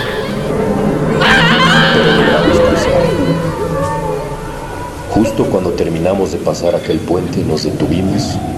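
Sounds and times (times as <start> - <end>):
shrill scream-like rises: 0.0 - 5.0
wailing moaning cries: 0.0 - 5.4
distant murky hubbub of overlapping voices speaking strange tongues: 0.0 - 8.5
laughter: 1.2 - 3.4
speech: 5.3 - 8.5.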